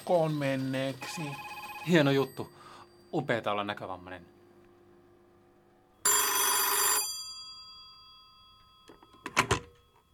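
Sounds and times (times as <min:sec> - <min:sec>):
speech: 0:00.1 - 0:04.4
old-fashioned telephone bell ringing loudly: 0:00.6 - 0:03.4, 0:06.0 - 0:10.1.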